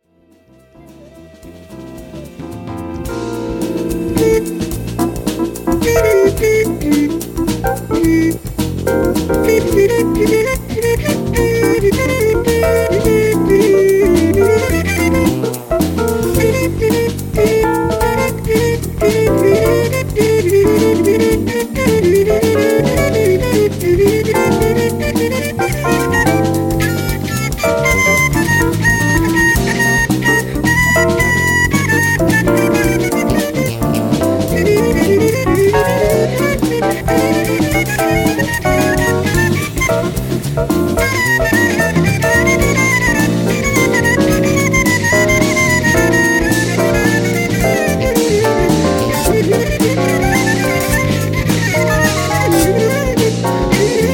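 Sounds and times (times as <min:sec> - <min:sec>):
flute solo: 0:00.0 - 0:54.1.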